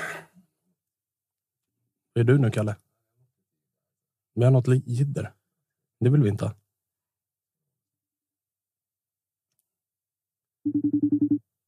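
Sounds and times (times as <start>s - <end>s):
speech: 2.2s - 2.9s, 4.4s - 5.4s, 6.0s - 6.6s
telephone ringing tone of an outgoing call: 10.7s - 11.6s.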